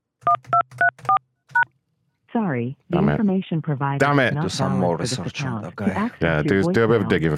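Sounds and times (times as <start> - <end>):
telephone touch-tone keypad beeps entering a voicemail PIN: 0.3 - 1.7
speech: 2.6 - 7.3.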